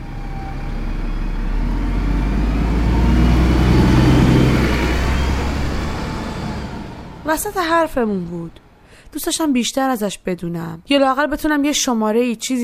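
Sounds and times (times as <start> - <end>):
bus engine rumbling as it pulls away and accelerates: 0.0 - 8.8
speech: 7.3 - 12.6.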